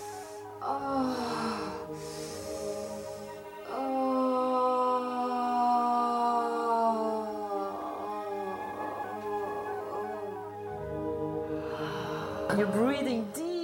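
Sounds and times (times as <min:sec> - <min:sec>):
deep breathing through the mouth during orgasmic breathing exercises: 0:00.0 - 0:03.6, 0:11.3 - 0:12.5
soft voiced sigh or moan on exhale: 0:00.0 - 0:12.6.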